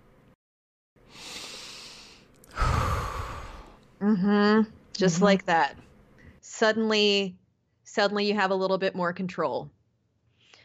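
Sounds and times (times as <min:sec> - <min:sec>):
deep breath: 0:01.1 - 0:03.8
speech: 0:04.0 - 0:05.9, 0:06.5 - 0:09.8.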